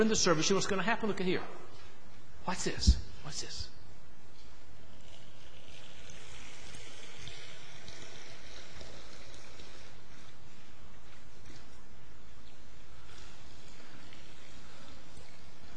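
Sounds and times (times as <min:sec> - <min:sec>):
speech: 0:00.0 - 0:01.8, 0:02.4 - 0:03.8
water pouring into a marble baptismal font in a church: 0:04.8 - 0:15.7.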